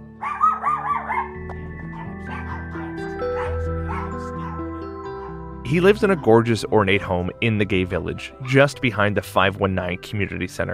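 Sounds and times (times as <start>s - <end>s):
dogs barking and yipping: 0.2s - 6.5s
speech: 5.7s - 10.7s.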